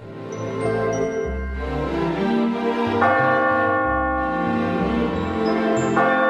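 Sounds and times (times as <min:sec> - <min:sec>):
church bells ringing: 0:00.2 - 0:06.2.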